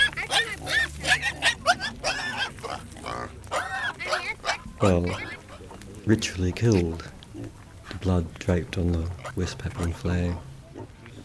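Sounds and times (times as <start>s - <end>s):
pig about to be ritually killed grunting and squealing: 0.0s - 11.2s
speech: 4.8s - 5.3s, 6.1s - 7.1s, 8.0s - 10.5s.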